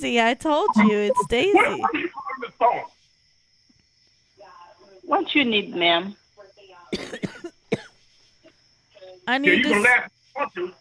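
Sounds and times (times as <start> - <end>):
speech: 0.0 - 2.9, 5.1 - 6.2, 9.3 - 10.7
woman coughing: 6.9 - 7.9.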